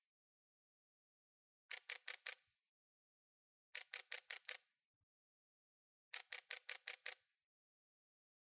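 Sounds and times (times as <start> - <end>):
Nikon Z6 camera: 1.7 - 2.5, 3.7 - 4.6, 6.1 - 7.2.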